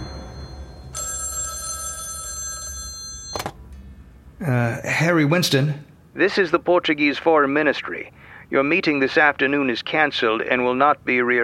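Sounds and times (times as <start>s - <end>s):
old-style telephone bell ringing: 0.0s - 3.6s
speech: 4.4s - 11.4s.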